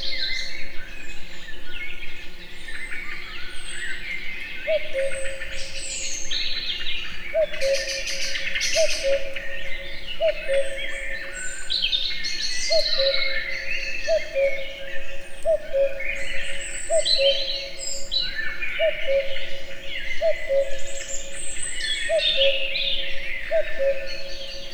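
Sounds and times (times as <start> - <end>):
many small birds singing and twittering in a forest: 0.0 - 24.7
common cuckoo cu-coo call in a forest near Egerturistaház, Hungary: 7.3 - 11.4, 12.6 - 24.7.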